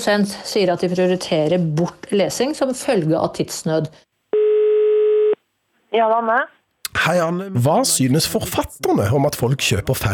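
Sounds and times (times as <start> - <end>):
speech: 0.0 - 4.1, 5.9 - 10.1
telephone ringback tone while placing a call: 4.4 - 5.4.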